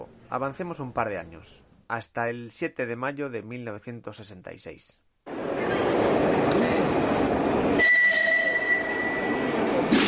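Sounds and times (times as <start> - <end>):
speech: 0.3 - 6.7
underground metro train roaring at a station in Madrid: 5.3 - 10.0.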